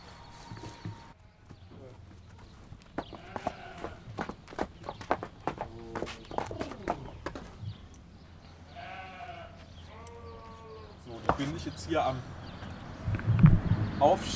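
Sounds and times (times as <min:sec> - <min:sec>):
draft horse mares' hooves clopping on a hard stable floor: 0:02.0 - 0:07.8
speech: 0:11.4 - 0:12.4, 0:14.0 - 0:14.3.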